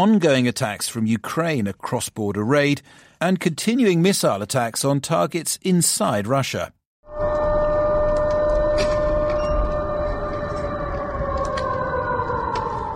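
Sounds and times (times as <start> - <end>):
constant wash of noise: 0.0 - 6.8
speech: 0.0 - 7.3
air raid siren wailing: 7.0 - 12.9.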